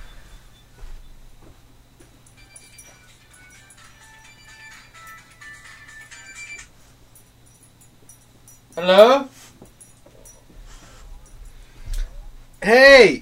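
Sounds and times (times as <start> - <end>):
low hum: 0.0 - 13.2
electronic phone ringtone melody of beeping tones: 2.4 - 6.8
speech: 8.8 - 9.3, 12.7 - 13.2.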